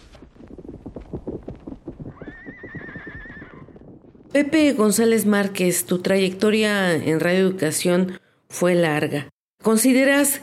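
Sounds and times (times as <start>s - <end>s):
hooves of carriage horses clip-clopping: 0.0s - 4.4s
horse letting out a long wavering whinny: 2.1s - 3.8s
speech: 4.4s - 10.4s.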